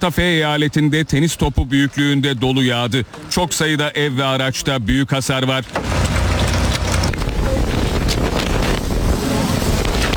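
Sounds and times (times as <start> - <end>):
speech: 0.0 - 6.2
roaring wind of a sandstorm on a mountain: 5.7 - 10.1.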